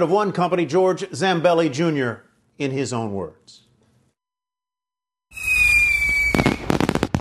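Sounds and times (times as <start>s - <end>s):
speech: 0.0s - 3.6s
fireworks rocket whistling as it climbs: 5.3s - 7.1s.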